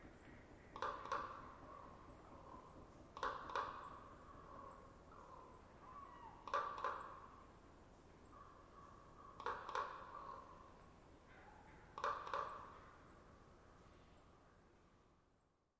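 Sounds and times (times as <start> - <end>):
low background hiss: 0.0 - 15.7
common raven calling with wonk and cluck calls: 0.7 - 7.5, 8.2 - 13.1.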